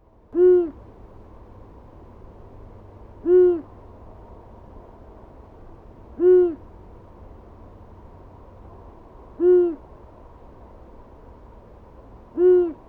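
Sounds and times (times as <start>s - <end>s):
owl hooting: 0.4s - 0.8s, 3.2s - 3.7s, 6.2s - 6.6s, 9.4s - 9.8s, 12.3s - 12.8s.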